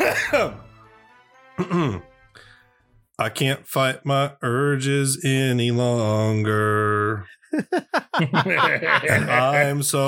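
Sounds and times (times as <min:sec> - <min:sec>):
harsh coughing with throaty clearing: 0:00.0 - 0:00.5, 0:01.6 - 0:02.0
laughter: 0:00.0 - 0:00.6, 0:07.5 - 0:10.0
speech: 0:00.3 - 0:00.7, 0:01.6 - 0:02.5, 0:03.2 - 0:10.0.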